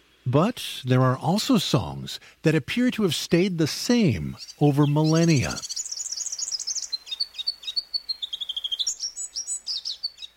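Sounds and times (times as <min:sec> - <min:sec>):
speech: 0:00.3 - 0:05.8
eastern African mountaintop sunbird high-pitched twittering: 0:03.2 - 0:10.3.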